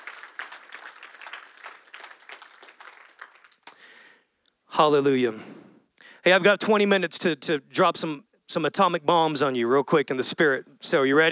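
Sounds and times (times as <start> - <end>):
audience clapping hands: 0.0 - 3.9
speech: 4.8 - 5.6, 6.2 - 11.3.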